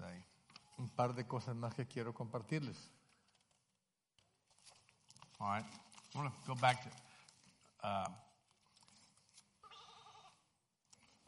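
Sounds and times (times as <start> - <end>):
quiet noise: 0.0 - 11.2
speech: 0.9 - 3.0, 5.4 - 7.1, 7.8 - 8.3
sheep bleating: 9.6 - 10.4.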